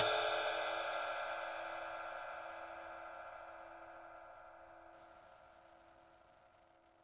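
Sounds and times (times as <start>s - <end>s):
big ride cymbal single hits: 0.0s - 4.9s.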